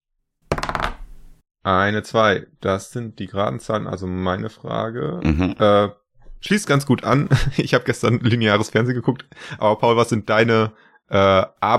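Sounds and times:
die rolled onto a surface: 0.5s - 1.4s
speech: 1.6s - 11.7s.

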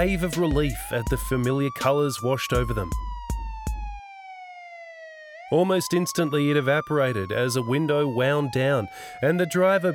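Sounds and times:
speech: 0.0s - 3.1s, 5.5s - 9.9s
police car siren wailing: 0.0s - 9.9s.

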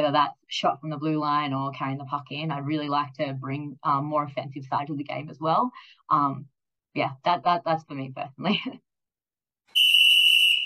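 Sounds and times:
speech: 0.0s - 8.9s
sharp shrill whistle blast: 9.7s - 10.6s.

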